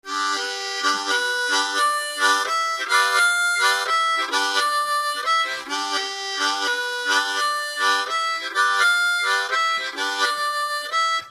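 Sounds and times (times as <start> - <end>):
harmonica played with the tongue: 0.1 - 11.2.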